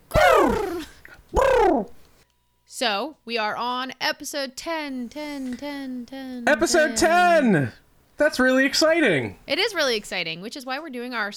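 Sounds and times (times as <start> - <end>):
voice imitating a chocobo bird squawk: 0.0 - 2.0
speech: 2.8 - 11.3.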